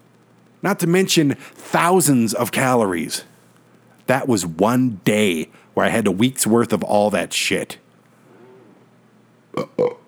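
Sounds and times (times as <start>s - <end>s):
speech: 0.6s - 3.3s, 4.1s - 7.8s, 9.6s - 10.0s
belching: 9.6s - 10.0s.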